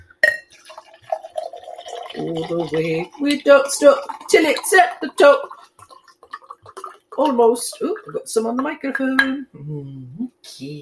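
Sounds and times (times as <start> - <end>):
glassy clink: 0.2 - 2.5
sherry being poured into a glass for a toast: 0.2 - 8.4
speech: 2.2 - 5.6, 7.2 - 10.8.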